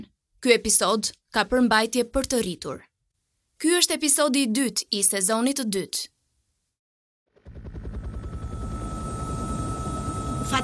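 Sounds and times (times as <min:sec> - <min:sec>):
speech: 0:00.4 - 0:02.9, 0:03.6 - 0:06.1, 0:10.5 - 0:10.6
helicopter rotor chopping: 0:07.4 - 0:10.6.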